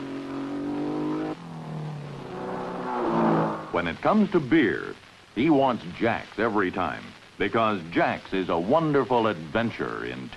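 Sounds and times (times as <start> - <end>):
sports car racing engine roaring: 0.0 - 4.0
speech: 3.8 - 10.3.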